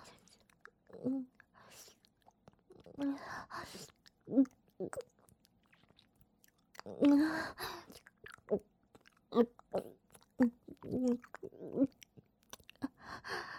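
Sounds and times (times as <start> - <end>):
person chewing food: 0.0 - 13.1.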